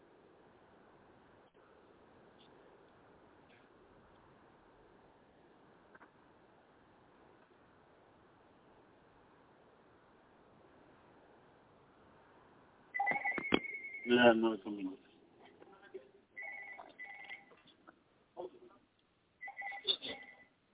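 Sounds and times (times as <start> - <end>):
landline telephone ringing with an incoming call: 13.0 - 14.1, 16.4 - 17.6, 19.4 - 20.4.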